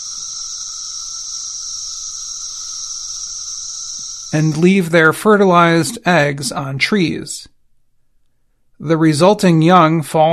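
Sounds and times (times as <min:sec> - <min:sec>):
male cicadas singing their thrumming mating call: 0:00.0 - 0:06.7
speech: 0:04.3 - 0:07.6, 0:08.8 - 0:10.3.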